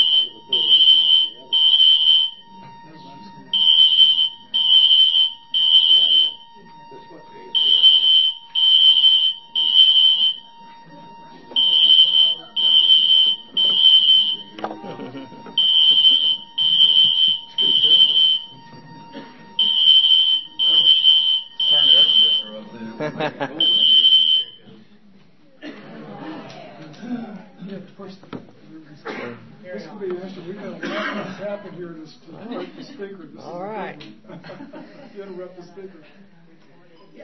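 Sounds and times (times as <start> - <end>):
fire alarm beeping: 0.0 - 24.6
voices talking: 0.0 - 37.2
laughter: 10.9 - 21.1, 21.8 - 24.2, 25.6 - 27.7, 30.4 - 33.2, 34.2 - 35.6.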